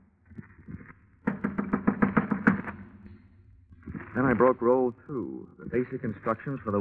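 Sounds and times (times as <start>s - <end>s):
firm knuckle knocks on a door at the top of a staircase: 1.3s - 2.8s
speech: 4.2s - 6.7s.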